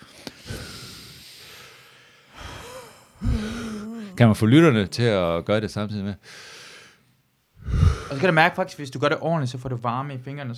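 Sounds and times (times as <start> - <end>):
noisy breathing in a breathing exercise: 0.0 - 5.0, 6.2 - 8.4
quick sharp gasp: 0.3 - 4.4, 6.2 - 7.0, 7.6 - 8.3
loud breath turning into a low voiced hum: 2.4 - 5.5
speech: 4.2 - 6.6, 7.6 - 10.5.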